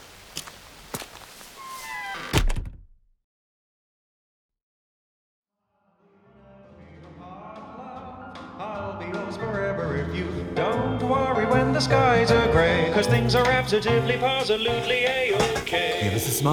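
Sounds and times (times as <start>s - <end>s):
door pushed shut with a heavy thud: 1.9s - 3.0s
soft music: 6.8s - 16.5s
speech: 8.6s - 16.5s.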